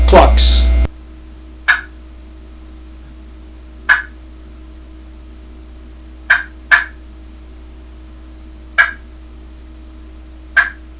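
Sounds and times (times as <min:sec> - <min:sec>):
turkey clucking: 0:01.7 - 0:02.0, 0:03.9 - 0:04.2, 0:06.3 - 0:07.0, 0:08.8 - 0:09.0, 0:10.6 - 0:10.8.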